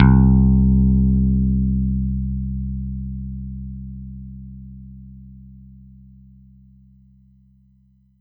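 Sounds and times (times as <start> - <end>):
synth pick bass note: 0.0 - 5.8.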